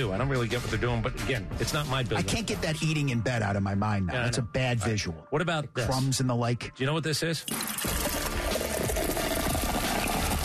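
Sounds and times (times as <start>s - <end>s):
speech: 0.0s - 8.0s
beer pouring from a beer tap: 7.5s - 10.4s.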